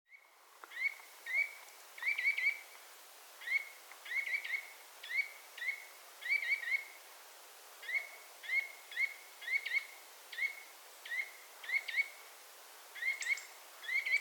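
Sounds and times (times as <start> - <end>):
quiet hissing background: 0.1 - 14.1
Eurasian nuthatch calling: 0.7 - 2.6, 3.4 - 6.9, 7.8 - 12.2, 13.0 - 14.1.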